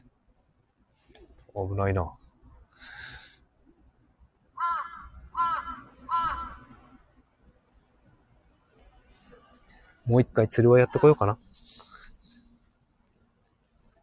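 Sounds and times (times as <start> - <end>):
speech: 1.6 - 2.2, 10.1 - 11.5
crow cawing: 4.6 - 6.8.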